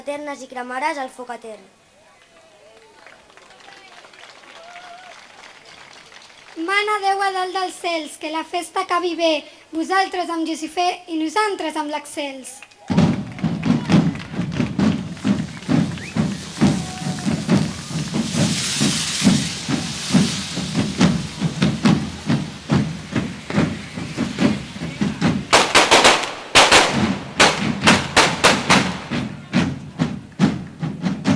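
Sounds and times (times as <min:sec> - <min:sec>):
speech: 0:00.0 - 0:01.8, 0:06.6 - 0:13.0
fireworks and firecrackers at the finale of a devils' fire-run in Sitges: 0:12.8 - 0:31.3
dense burst of sharp firecracker bangs: 0:12.9 - 0:31.3.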